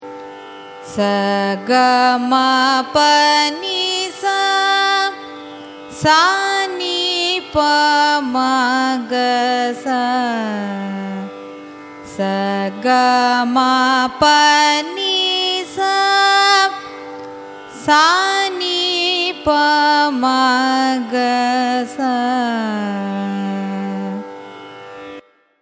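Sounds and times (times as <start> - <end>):
Carnatic raga Thilang ascending and descending scale: 0.0 - 25.6.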